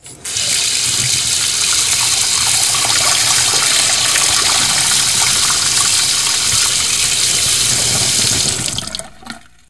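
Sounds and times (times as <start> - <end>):
sink tap: 0.3 - 9.0.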